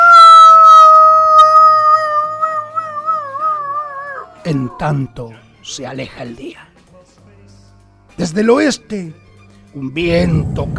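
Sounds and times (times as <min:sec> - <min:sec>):
coyote howling at dawn near a small western village: 0:00.0 - 0:05.2
speech: 0:04.5 - 0:06.7, 0:08.2 - 0:10.7.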